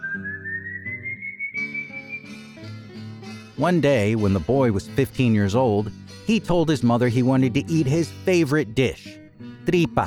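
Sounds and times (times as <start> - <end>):
person whistling a steady gliding tone: 0.0 - 2.5
soft instrumental backing: 0.0 - 10.0
speech: 3.6 - 10.0.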